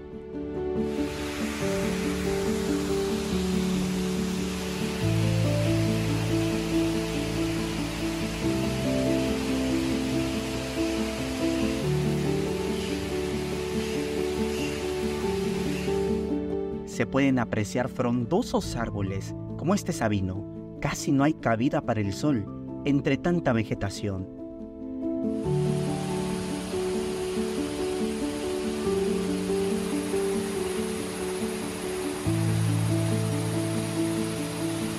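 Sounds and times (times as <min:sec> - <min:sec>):
flowing river water: 0:00.6 - 0:16.4, 0:25.4 - 0:34.9
speech: 0:17.0 - 0:24.4.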